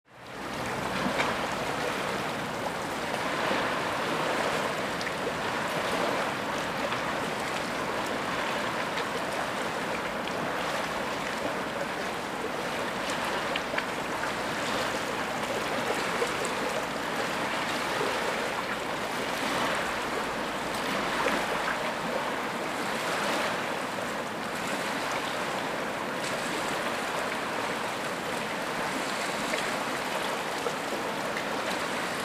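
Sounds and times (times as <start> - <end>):
lake ambience: 0.1 - 32.2.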